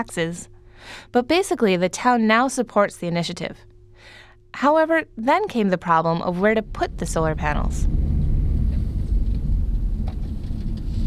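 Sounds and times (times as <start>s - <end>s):
speech: 0.0s - 8.0s
car rolling along a rough dirt road heard from inside: 6.6s - 11.0s
small rattles and bumps inside car: 6.6s - 11.0s.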